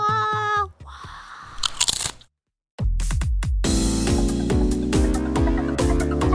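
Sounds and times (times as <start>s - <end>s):
crunching potato chips: 1.6s - 2.3s
bouncy music with a steady bass line: 2.8s - 6.3s.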